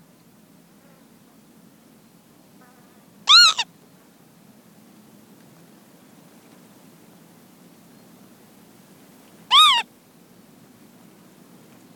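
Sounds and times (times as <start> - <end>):
female northern lapwing on the ground giving anxiety calls: 3.3 - 3.7, 9.5 - 9.9.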